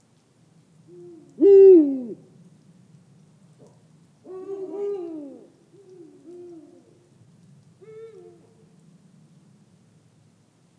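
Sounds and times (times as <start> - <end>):
Eurasian eagle-owl hooting: 0.9 - 2.2, 4.3 - 7.0.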